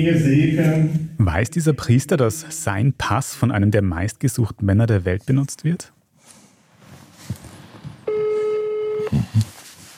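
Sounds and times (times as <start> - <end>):
speech: 0.0 - 6.0
telephone ringback tone of an outgoing call: 8.1 - 9.1.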